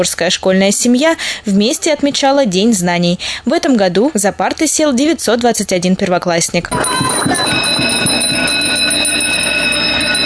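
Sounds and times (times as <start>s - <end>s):
speech: 0.0s - 8.6s
school bell ringing at a first-day-of-school ceremony: 6.7s - 10.2s.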